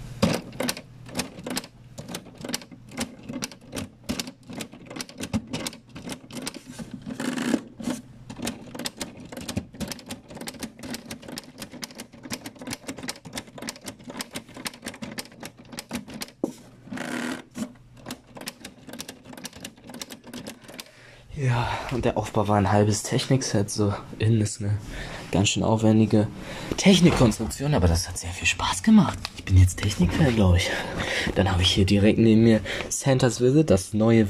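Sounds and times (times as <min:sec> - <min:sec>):
building-brick toy typewriter keys clicking: 0:00.2 - 0:07.7, 0:08.3 - 0:16.4, 0:18.0 - 0:20.9
speech: 0:21.5 - 0:34.2.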